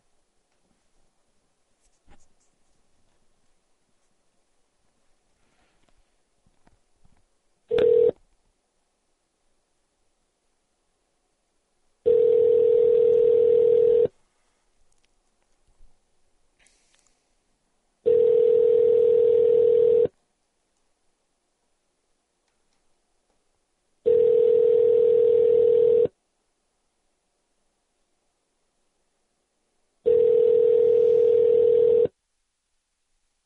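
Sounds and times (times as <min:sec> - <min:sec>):
telephone ringing tones of an outgoing call: 0:07.7 - 0:08.2, 0:12.1 - 0:14.1, 0:18.1 - 0:20.1, 0:24.1 - 0:26.1, 0:30.1 - 0:32.1.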